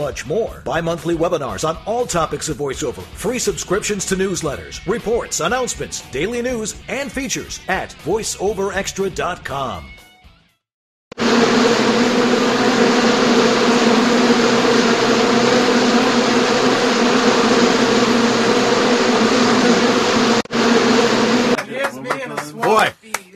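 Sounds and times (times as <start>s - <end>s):
speech: 0.0s - 10.0s
bees buzzing: 11.2s - 21.6s.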